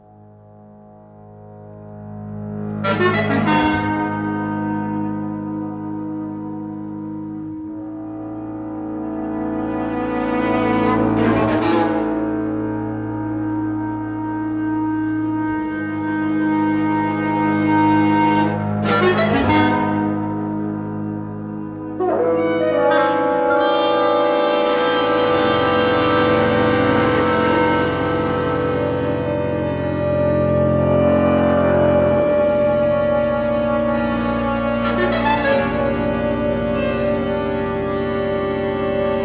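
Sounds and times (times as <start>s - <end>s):
slow orchestral passage of sustained layered chords: 0.0s - 39.2s
speech: 2.9s - 3.8s.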